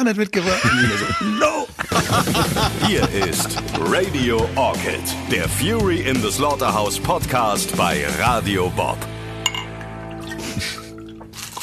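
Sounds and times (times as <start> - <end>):
speech: 0.0 - 9.2
laughter: 0.4 - 4.6
glasses clinking for a toast: 9.4 - 9.9.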